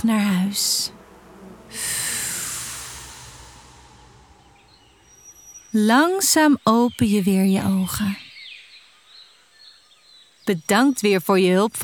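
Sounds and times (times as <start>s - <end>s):
speech: 0.0s - 0.8s, 5.7s - 8.2s, 10.5s - 11.8s
deep slow breath in and out through the nose: 1.0s - 5.6s.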